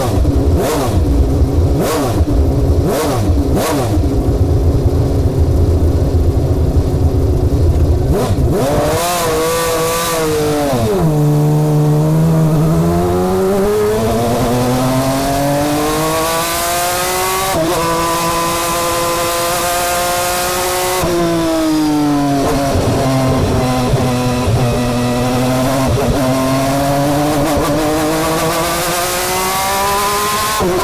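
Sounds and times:
1991 McLaren MP4-6 Honda V12 engine heard from inside the car: 0.0 - 30.8.

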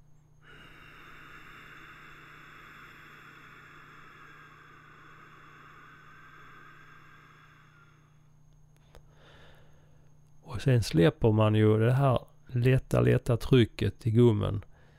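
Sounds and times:
low constant hum: 0.0 - 14.9
long steady hissing exhalation: 0.4 - 8.3
speech: 10.6 - 14.7.

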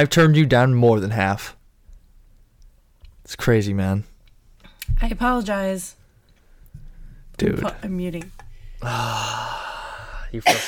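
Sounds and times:
speech: 0.0 - 1.6, 3.3 - 4.1, 5.0 - 6.0, 7.4 - 9.6, 10.3 - 10.6
strained breathy vocal sound: 8.7 - 10.4
person coughing: 10.4 - 10.6.

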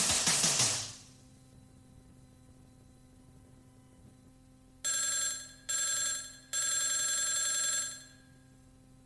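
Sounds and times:
low steady hum: 1.0 - 9.0
telephone ringing: 4.8 - 8.4.

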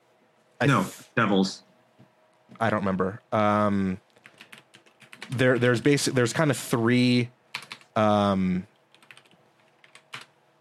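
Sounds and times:
speech: 0.6 - 1.7, 2.6 - 4.0, 5.3 - 7.4, 8.0 - 8.7
computer keyboard typing: 4.2 - 5.8, 7.5 - 8.0, 8.8 - 10.3.

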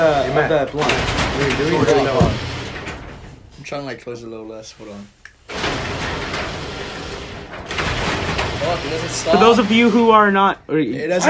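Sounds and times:
speech: 0.0 - 2.5, 3.6 - 6.1, 8.7 - 11.2
garage door opening and closing along its track: 0.0 - 3.8, 5.5 - 10.3.

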